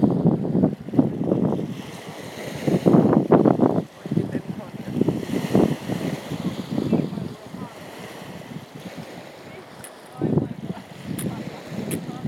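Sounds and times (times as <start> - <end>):
Baltic Sea waves washing onto a beach: 0.0 - 12.2
wind buffeting the microphone: 0.0 - 12.2
faint voices of people: 3.8 - 8.4, 9.0 - 12.2.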